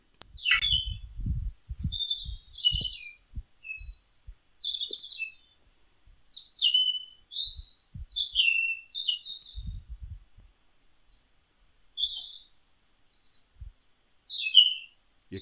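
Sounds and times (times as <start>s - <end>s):
faint low rumbling noise: 0.1s - 4.1s, 9.5s - 10.5s
nightingale singing: 0.1s - 15.4s.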